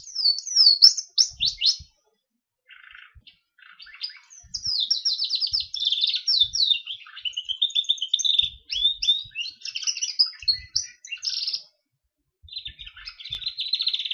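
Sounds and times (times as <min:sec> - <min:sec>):
Gloster canary singing warbled notes and rolling trills: 0:00.0 - 0:14.1.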